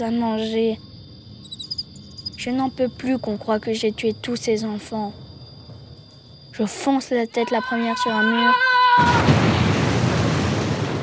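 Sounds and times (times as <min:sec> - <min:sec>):
speech: 0:00.0 - 0:00.9, 0:02.4 - 0:05.2, 0:06.5 - 0:09.4
prison exploding with deep rumbling roar: 0:09.0 - 0:11.0.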